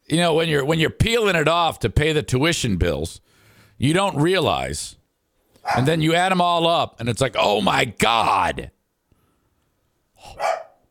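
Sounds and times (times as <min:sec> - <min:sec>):
speech: 0:00.1 - 0:05.0, 0:05.6 - 0:08.8, 0:10.2 - 0:10.6
dog barking: 0:05.6 - 0:06.0, 0:10.3 - 0:10.8.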